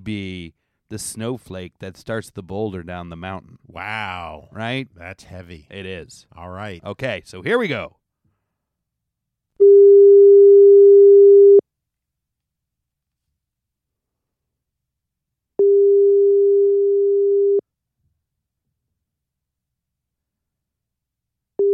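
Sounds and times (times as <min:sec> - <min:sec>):
speech: 0:00.0 - 0:08.0
phone ringback tone on a call: 0:09.6 - 0:11.6, 0:15.6 - 0:17.6, 0:21.6 - 0:21.7.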